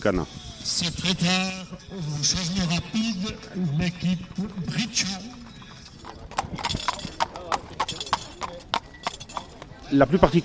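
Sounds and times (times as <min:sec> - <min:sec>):
speech: 0:00.0 - 0:05.4, 0:06.5 - 0:07.0, 0:09.9 - 0:10.4
horse hooves clip-clopping on a hard surface: 0:04.2 - 0:09.9.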